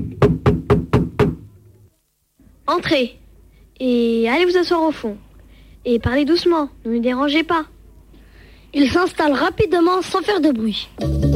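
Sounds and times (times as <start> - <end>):
knocking on a classroom door: 0.0 - 1.5
speech: 2.7 - 3.2, 3.8 - 5.2, 5.8 - 7.7, 8.7 - 11.3.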